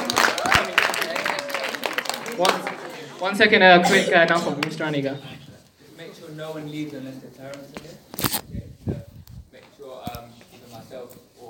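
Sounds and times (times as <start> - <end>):
faint cheers and voices: 0.0 - 3.2
audience of many hands clapping: 0.0 - 3.3
speech: 2.4 - 5.3, 6.3 - 8.6.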